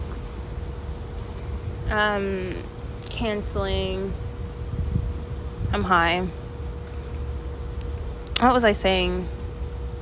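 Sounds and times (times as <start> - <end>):
steady wind rumbling against the microphone outdoors: 1.0 - 8.3
speech: 1.9 - 4.3, 5.7 - 6.4, 8.4 - 9.4.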